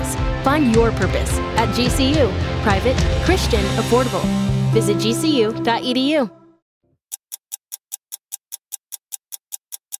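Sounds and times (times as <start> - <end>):
speech: 0.4 - 6.4
large school wall clock ticking: 7.1 - 9.9.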